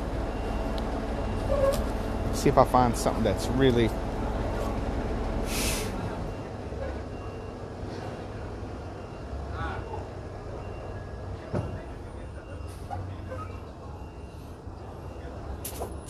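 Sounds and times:
city street traffic noise: 0:00.0 - 0:16.0
heavy truck engine rumbling on a city street: 0:00.0 - 0:16.0
speech: 0:02.4 - 0:04.0.

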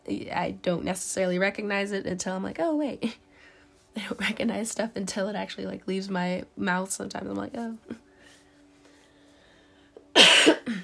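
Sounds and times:
faint hum: 0:00.0 - 0:10.8
speech: 0:00.1 - 0:03.3, 0:04.0 - 0:08.0
dry cough: 0:10.1 - 0:10.8.

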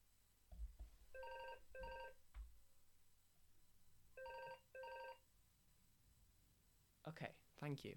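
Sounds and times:
telephone ringing with bright electronic tone: 0:01.2 - 0:02.2, 0:04.2 - 0:05.2
speech: 0:07.0 - 0:07.9.

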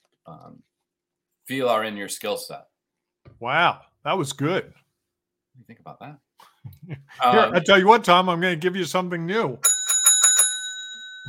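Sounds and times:
speech: 0:00.3 - 0:00.7, 0:01.5 - 0:02.7, 0:03.4 - 0:04.8, 0:05.6 - 0:09.8
laughter: 0:06.6 - 0:07.7
bicycle bell ringing: 0:09.6 - 0:11.2.

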